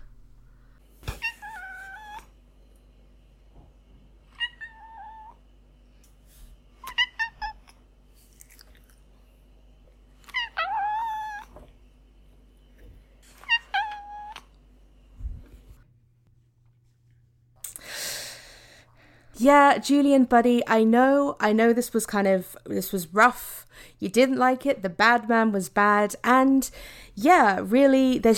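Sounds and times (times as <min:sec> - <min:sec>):
domestic cat meowing: 0:01.2 - 0:02.2, 0:04.4 - 0:05.4, 0:06.8 - 0:07.6, 0:10.3 - 0:11.5, 0:13.4 - 0:14.4
speech: 0:19.4 - 0:28.3.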